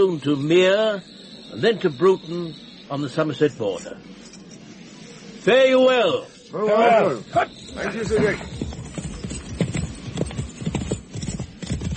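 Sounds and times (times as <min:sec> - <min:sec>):
speech: 0:00.0 - 0:04.3, 0:05.4 - 0:08.6
horses' hooves clip-clopping as riders travel across an open plain: 0:07.3 - 0:11.9.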